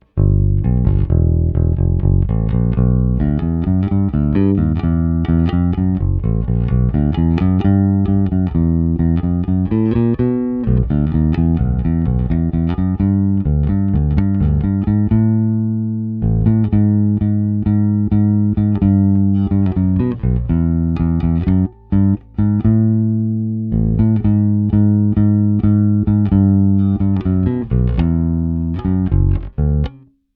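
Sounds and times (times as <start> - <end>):
Precision bass with Techwood fingerboard and La Bella flatwound strings, tone control open: 0.0 - 30.3.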